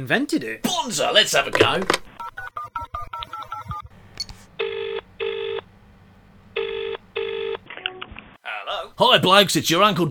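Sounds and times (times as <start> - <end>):
speech: 0.0 - 2.1, 9.0 - 10.0
phone ringing in double bursts: 1.6 - 5.6, 6.6 - 8.0
electronic telephone dial tones: 2.2 - 3.9, 4.6 - 5.6, 6.6 - 8.0.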